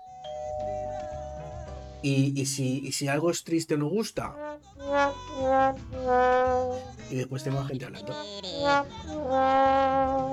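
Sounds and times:
doorbell ding-dong chime: 0.0s - 2.0s
speech: 2.0s - 10.3s.

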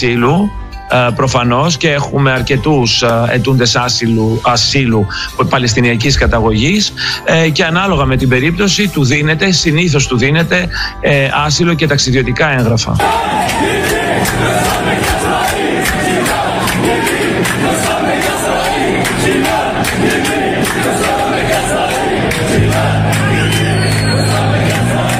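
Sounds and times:
speech: 0.0s - 15.6s
large crowd chanting and shouting in unison in the Athens metro: 13.0s - 25.1s
low rumbling hum: 13.0s - 25.1s.

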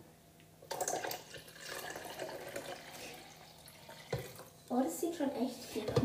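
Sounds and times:
water poured into a container for lemonade: 0.7s - 4.7s
speech: 4.7s - 6.0s.

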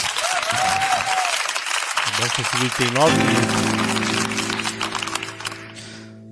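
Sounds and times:
audience applause: 0.0s - 5.8s
speech: 2.2s - 4.0s.

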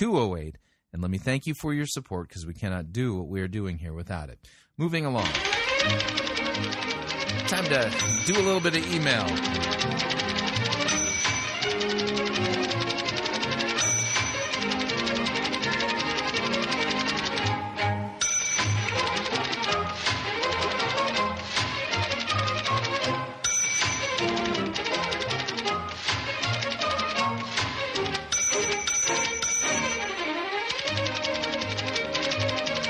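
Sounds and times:
speech: 0.0s - 10.2s
lively orchestral instrumental music: 4.8s - 32.8s
typewriter bell ding: 5.2s - 17.6s, 18.2s - 21.2s, 22.2s - 25.6s, 28.2s - 32.8s.

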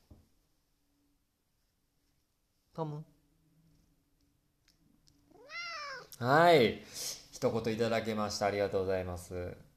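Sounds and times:
speech: 2.8s - 3.2s, 6.2s - 9.7s
cat meowing on a person's lap: 5.3s - 6.2s.

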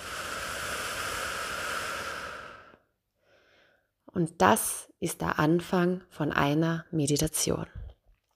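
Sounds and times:
long deep exhale: 0.0s - 3.9s
speech: 4.2s - 7.8s.

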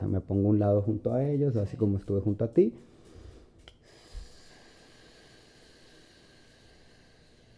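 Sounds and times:
speech: 0.1s - 3.0s
slow deep breathing close to the microphone: 2.8s - 7.5s.

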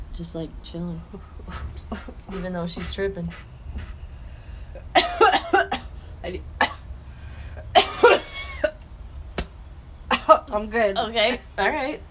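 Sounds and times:
speech: 0.2s - 3.9s, 6.2s - 6.5s, 10.5s - 12.0s
person coughing: 4.8s - 5.9s, 7.7s - 8.8s.

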